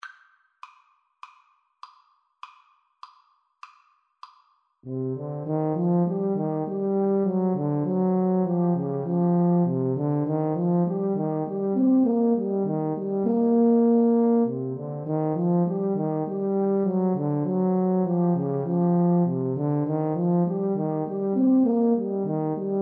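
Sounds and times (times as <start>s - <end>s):
two euphoniums and tuba playing: 4.9s - 22.8s.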